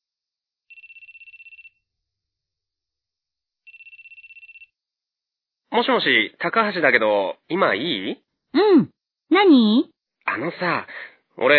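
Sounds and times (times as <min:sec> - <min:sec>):
telephone ringing with electronic trill: 0:00.7 - 0:01.9, 0:03.7 - 0:04.8
speech: 0:05.7 - 0:11.5.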